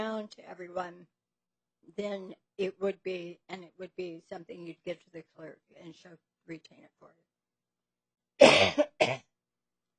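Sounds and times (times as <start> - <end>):
speech: 0.0 - 1.2, 1.8 - 7.3, 8.4 - 9.3
rasping cough: 8.4 - 9.3.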